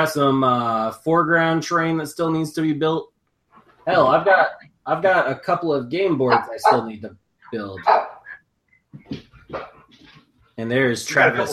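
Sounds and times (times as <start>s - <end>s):
speech: 0.0s - 3.1s, 3.9s - 8.0s, 10.6s - 11.5s
two dogs giving short sharp barks: 6.1s - 8.4s.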